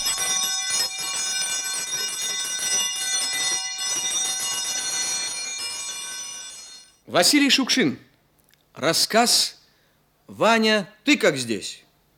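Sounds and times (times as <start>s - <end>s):
theatre electric bell ringing to signal the start of a performance: 0.0s - 7.0s
speech: 7.1s - 8.1s, 8.8s - 9.6s, 10.3s - 11.8s.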